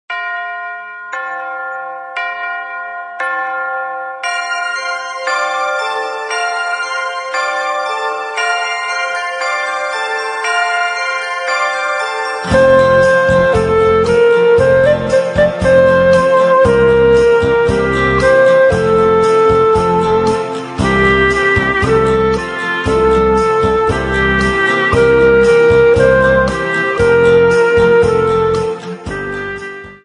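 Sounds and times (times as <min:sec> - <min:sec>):
song about little bells: 0:00.1 - 0:30.0.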